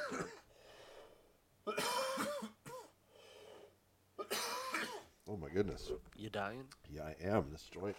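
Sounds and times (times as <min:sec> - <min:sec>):
person in a harsh coughing fit: 0:00.0 - 0:00.5, 0:01.7 - 0:03.0, 0:04.2 - 0:05.1
speech: 0:05.3 - 0:07.9.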